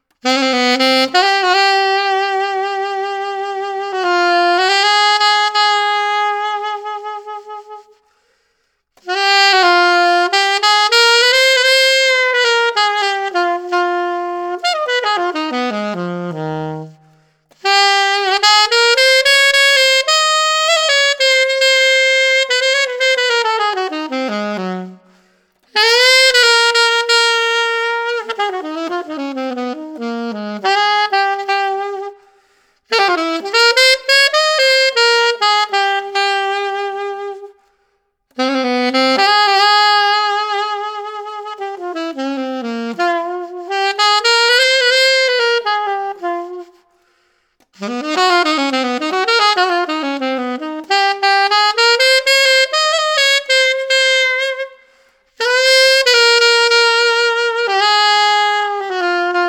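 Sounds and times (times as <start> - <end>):
alto saxophone with metal mouthpiece and reverb: 0.0 - 59.4.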